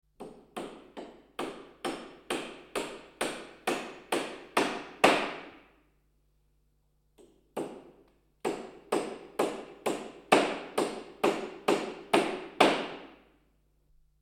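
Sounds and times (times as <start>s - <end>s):
hammering during DIY home repairs: 0.2s - 5.5s, 7.2s - 13.1s.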